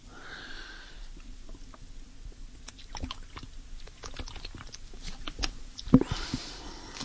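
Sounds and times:
person breathing: 0.0s - 1.2s, 6.0s - 7.0s
mouth clicks: 2.6s - 6.2s
person drinking cold water with small wet gulps: 2.6s - 6.3s.

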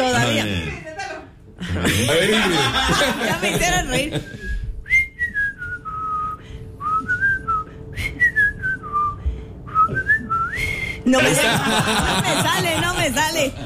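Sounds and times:
laughter: 1.6s - 4.5s, 11.1s - 13.6s
speech: 1.6s - 4.6s, 11.1s - 13.6s
person whistling a wavering sliding tune: 4.4s - 11.0s.

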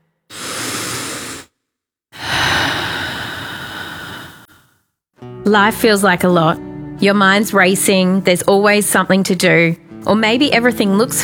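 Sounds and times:
deep breath in and out: 0.2s - 5.0s
speech: 5.5s - 11.2s.

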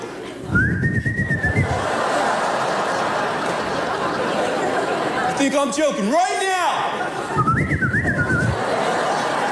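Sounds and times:
laughter: 0.0s - 5.7s, 6.7s - 9.4s
short breathy human whistle to call kids in: 0.5s - 1.8s, 7.4s - 8.6s
speech: 5.5s - 6.4s.

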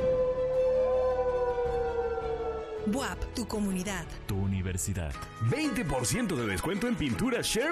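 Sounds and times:
wolf howl: 0.0s - 2.9s
speech: 2.8s - 7.6s.

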